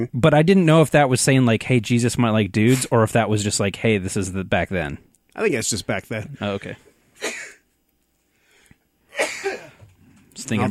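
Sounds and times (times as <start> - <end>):
speech: 0.0 - 6.9, 10.4 - 10.6
person sneezing: 7.2 - 7.6, 9.1 - 9.8.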